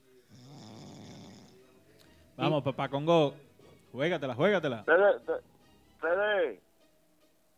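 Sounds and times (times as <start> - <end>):
person snoring: 0.1 - 1.6
speech: 2.4 - 6.6.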